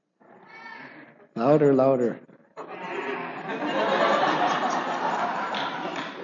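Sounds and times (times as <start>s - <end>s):
speech: 1.4s - 2.3s
crowd bleating and chatter: 2.6s - 3.6s
laughter: 2.6s - 6.2s.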